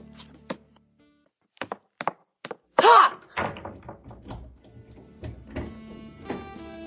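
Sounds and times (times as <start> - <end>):
several locks being thrown: 3.2 - 6.8
door thudding shut: 3.3 - 6.6.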